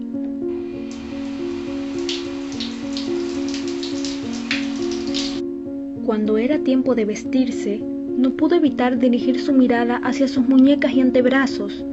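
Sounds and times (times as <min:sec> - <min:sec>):
soft sustained musical tones: 0:00.0 - 0:11.9
shower water spraying on a hard surface: 0:00.5 - 0:05.4
speech: 0:06.1 - 0:11.9.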